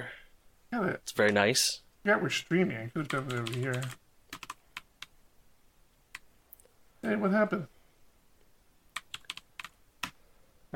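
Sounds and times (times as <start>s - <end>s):
speech: 0.0s - 4.0s, 7.0s - 7.7s
typing on a computer keyboard: 3.0s - 5.1s, 9.0s - 10.2s.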